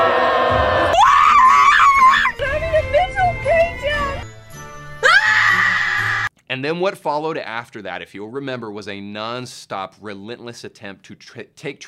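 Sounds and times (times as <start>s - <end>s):
people screaming: 0.0s - 2.8s, 5.0s - 6.3s
speech: 6.6s - 11.8s.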